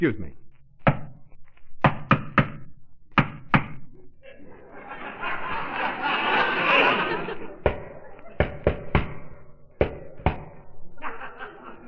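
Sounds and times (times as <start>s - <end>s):
speech: 0.0s - 0.4s
knocking on a building's cellar door: 1.8s - 3.8s, 7.6s - 10.6s
laughter and voices: 4.0s - 8.4s, 10.8s - 11.8s.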